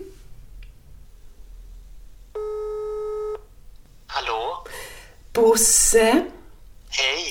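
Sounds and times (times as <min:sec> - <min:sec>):
telephone ringing tone of an outgoing call to a translator: 0:02.4 - 0:03.4
speech: 0:05.6 - 0:07.1.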